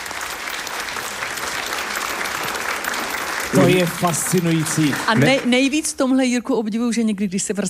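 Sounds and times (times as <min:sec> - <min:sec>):
audience applause: 0:00.0 - 0:05.9
speech: 0:03.5 - 0:07.6.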